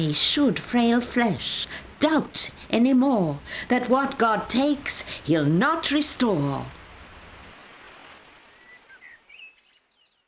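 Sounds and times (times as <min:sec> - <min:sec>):
speech: 0:00.0 - 0:06.8
steady dense rain falling: 0:00.0 - 0:09.4
small birds chirping and tweeting faintly: 0:08.5 - 0:10.2.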